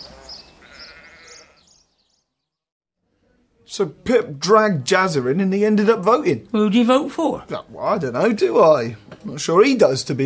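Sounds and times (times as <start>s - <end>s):
sheep bleating: 0.0s - 1.8s
speech: 3.7s - 10.2s.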